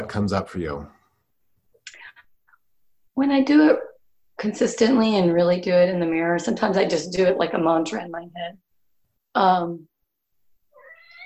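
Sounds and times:
speech: 0:00.1 - 0:01.0, 0:03.2 - 0:03.8, 0:04.4 - 0:08.6, 0:09.4 - 0:09.9
house cat meowing: 0:10.8 - 0:11.2.

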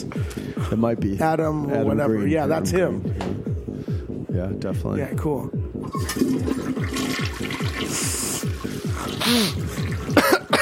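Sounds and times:
speech: 0:00.0 - 0:03.5, 0:04.4 - 0:08.2, 0:09.3 - 0:09.7
toilet flushing in a restroom with stalls: 0:05.8 - 0:10.2
water gurgling: 0:05.9 - 0:10.2
water hissing: 0:06.8 - 0:10.2.

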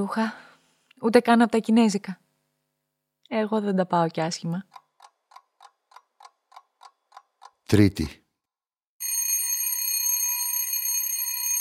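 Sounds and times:
speech: 0:00.0 - 0:00.4, 0:01.0 - 0:02.2, 0:03.3 - 0:04.8, 0:07.7 - 0:08.2
electric doorbell ringing: 0:09.0 - 0:11.5.

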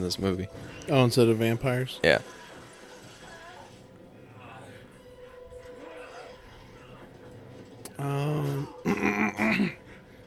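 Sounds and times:
speech: 0:00.0 - 0:02.4
person clearing throat: 0:08.8 - 0:09.8.

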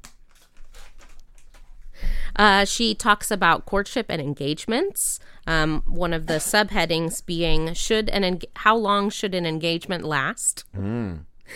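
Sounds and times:
plastic pet treat bag rustling: 0:00.2 - 0:02.0
speech: 0:02.4 - 0:11.5.

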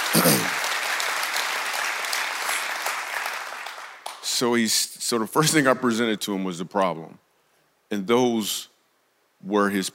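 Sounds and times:
audience clapping: 0:00.0 - 0:04.4
speech: 0:04.4 - 0:07.2, 0:07.9 - 0:08.7, 0:09.4 - 0:09.9.

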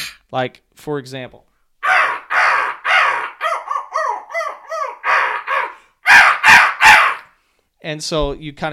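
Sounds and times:
speech: 0:00.3 - 0:01.5, 0:07.8 - 0:08.7
crow cawing harshly: 0:01.8 - 0:07.3.

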